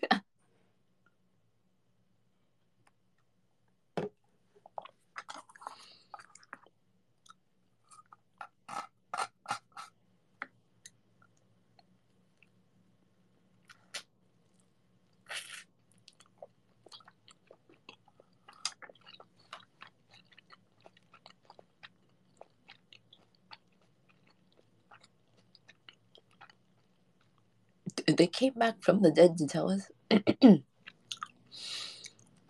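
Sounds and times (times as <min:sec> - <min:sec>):
person chewing food with crunches and smacks: 0:04.6 - 0:12.6, 0:13.6 - 0:27.8, 0:30.8 - 0:32.4
speech: 0:28.0 - 0:30.7.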